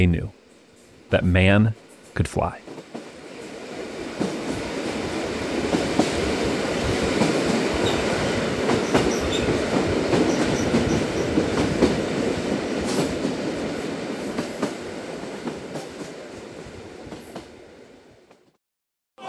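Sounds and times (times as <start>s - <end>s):
speech: 0.0s - 0.4s, 1.1s - 2.7s
train rolling along the rails: 2.6s - 18.4s
high train squeals: 7.8s - 8.2s, 8.9s - 9.6s, 10.2s - 11.4s.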